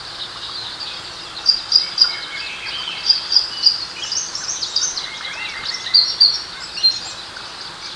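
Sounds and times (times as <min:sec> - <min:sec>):
summer birds singing: 0:00.0 - 0:07.9.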